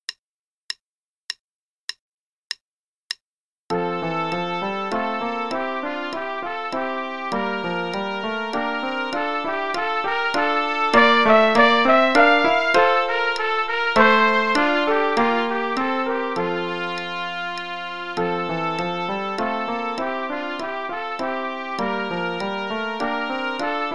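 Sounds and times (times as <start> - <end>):
piano: 3.7 - 23.9
trumpet: 3.7 - 23.9
metronome click: 4.3 - 6.9, 7.7 - 23.8.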